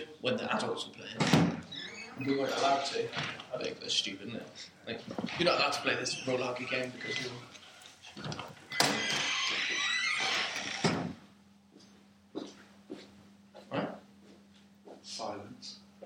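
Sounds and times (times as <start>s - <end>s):
speech: 0.2s - 1.5s, 2.2s - 7.6s, 8.2s - 8.5s
door scraping and bumping as it opens and shuts: 1.1s - 3.6s, 5.1s - 7.5s, 8.1s - 11.2s.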